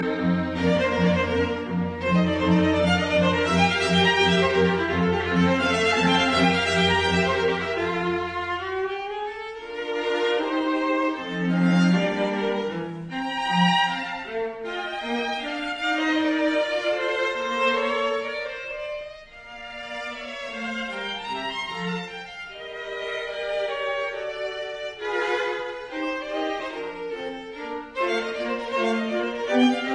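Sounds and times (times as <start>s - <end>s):
string quartet playing a classical allegretto movement: 0.0s - 29.9s.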